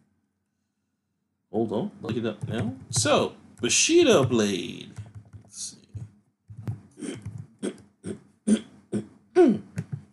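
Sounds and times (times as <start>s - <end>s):
speech: 1.5s - 5.8s
person clearing throat with something caught in the throat: 7.0s - 9.8s
person coughing with something caught in the throat: 8.5s - 9.7s.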